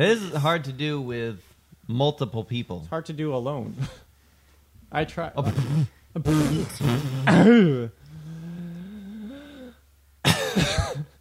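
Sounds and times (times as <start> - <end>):
speech: 0.0 - 4.0, 4.9 - 8.0
coughing into microphone: 5.4 - 8.0, 10.2 - 11.2.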